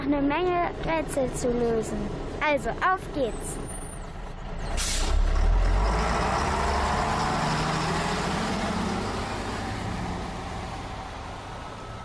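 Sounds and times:
large city bus engine drone: 0.0 - 12.0
speech: 0.1 - 3.7
bus air brakes hissing: 4.7 - 5.2.

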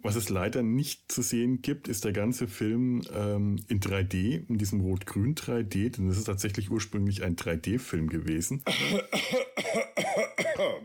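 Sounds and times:
speech: 0.0 - 9.8
harsh coughs: 8.6 - 10.8.

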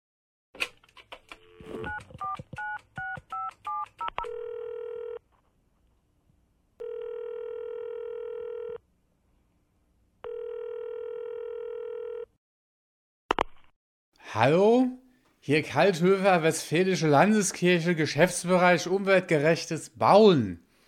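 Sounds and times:
long steady ringback tones on a phone line: 4.2 - 5.2, 6.8 - 8.8, 10.2 - 12.3
speech: 14.4 - 20.6.

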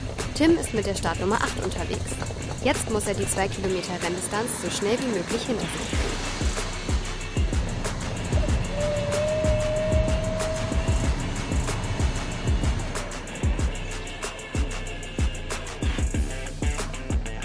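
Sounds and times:
harness racing start car engine rumbling: 0.0 - 4.3, 5.6 - 17.3
harness racing horses trotting hoofbeats: 0.0 - 5.8
speech: 0.4 - 6.3
whistle-like tone: 6.6 - 12.4.

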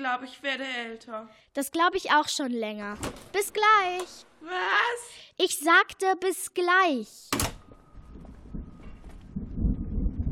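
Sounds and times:
speech: 0.0 - 7.5
low heavy thunder rumbling: 7.7 - 10.3.

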